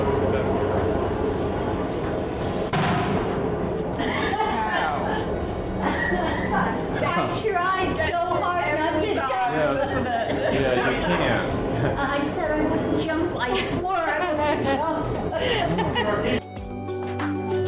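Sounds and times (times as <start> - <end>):
rumbling wash of sound: 0.0 - 16.4
noisy outdoor background: 0.0 - 17.6
gunpowder blast set off by a lit fuse to blow a wheel around: 2.7 - 3.8
laughter: 4.0 - 12.6, 13.5 - 16.4.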